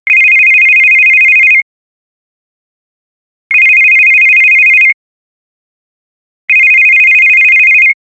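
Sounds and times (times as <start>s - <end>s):
realistic smartphone ring: 0.1s - 1.6s, 3.5s - 5.0s, 6.5s - 8.0s.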